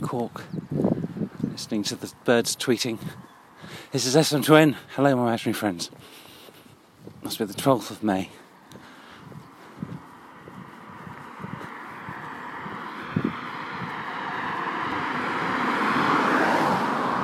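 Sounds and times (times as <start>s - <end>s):
cars passing on a suburban road in Glanmire, Cork: 0.0s - 17.2s
speech: 0.1s - 0.9s, 1.6s - 6.2s, 7.2s - 8.4s.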